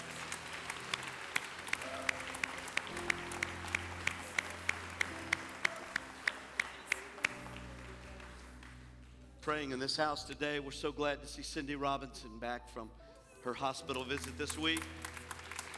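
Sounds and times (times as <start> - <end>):
audience clapping in praise: 0.0 - 10.0, 13.8 - 15.7
sustained low organ or keyboard chords: 0.0 - 15.7
speech: 9.5 - 15.1.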